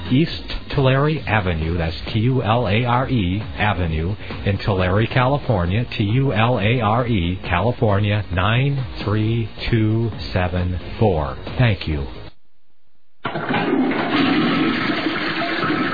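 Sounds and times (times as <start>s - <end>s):
speech: 0.1s - 12.2s, 13.3s - 13.9s
toilet flushing with a rush of water: 13.2s - 15.9s.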